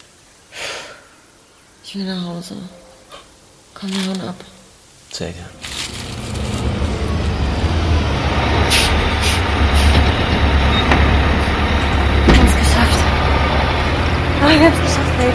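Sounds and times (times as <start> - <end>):
speech: 1.9 - 2.8, 3.8 - 5.7, 14.4 - 15.3
train arriving with a low rumble: 5.2 - 15.3.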